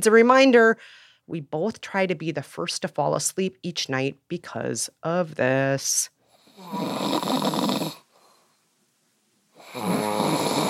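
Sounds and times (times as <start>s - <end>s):
speech: 0.0s - 7.5s
man snoring loudly: 6.4s - 8.1s, 9.6s - 10.6s.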